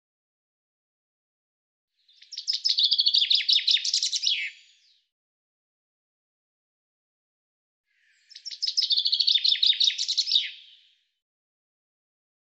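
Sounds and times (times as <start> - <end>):
common chaffinch singing: 2.1 - 4.9, 8.1 - 10.9.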